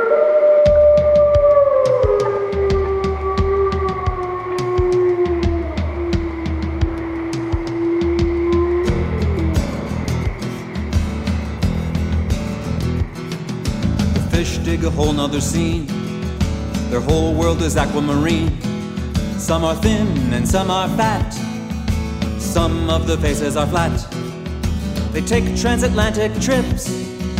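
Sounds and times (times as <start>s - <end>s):
long drawn-out animal howl: 0.0s - 13.3s
thumping musical beat: 0.6s - 27.3s
speech: 14.8s - 16.0s, 16.9s - 18.7s, 19.4s - 21.5s, 22.6s - 24.1s, 25.2s - 27.0s.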